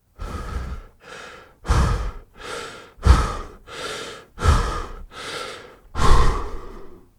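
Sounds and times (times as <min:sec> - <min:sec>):
man breathing heavily: 0:00.0 - 0:07.1.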